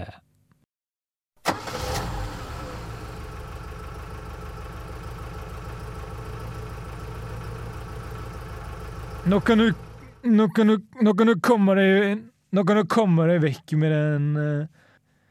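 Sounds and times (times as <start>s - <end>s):
car engine roaring in and idling at a car repair workshop: 1.5s - 10.3s
speech: 9.3s - 14.8s.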